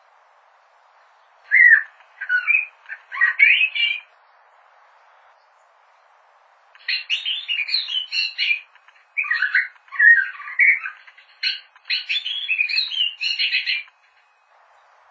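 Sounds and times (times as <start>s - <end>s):
bird singing scratchy chattering warbles: 1.4s - 4.1s, 6.8s - 14.4s.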